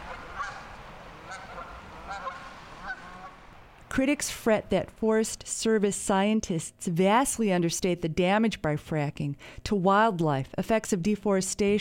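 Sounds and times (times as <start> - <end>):
flock of geese honking: 0.0 - 3.5
faint outdoor hum: 0.0 - 11.8
speech: 4.0 - 11.8.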